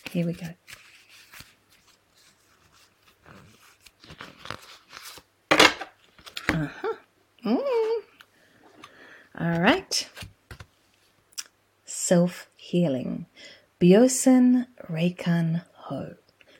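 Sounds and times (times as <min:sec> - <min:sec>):
deck of cards shuffling with papery rustles and riffling: 0:00.0 - 0:06.6, 0:09.6 - 0:10.8
speech: 0:00.1 - 0:00.8, 0:12.1 - 0:16.2.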